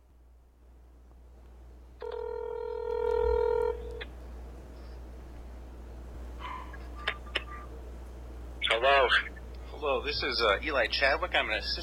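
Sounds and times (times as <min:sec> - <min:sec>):
quiet telephone line noise: 0:00.0 - 0:11.8
telephone call tone played through a small speaker into a microphone: 0:02.0 - 0:04.0
speech: 0:08.8 - 0:11.8.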